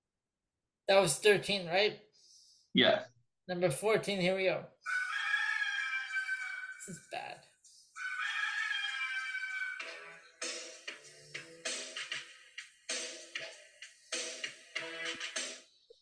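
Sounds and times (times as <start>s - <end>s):
speech: 0.9s - 2.0s, 2.8s - 5.0s
rooster crowing in a wrestling entrance theme: 4.9s - 6.9s, 8.0s - 10.2s
punchy rhythmic music stabs in a wrestling entrance theme: 9.8s - 15.7s.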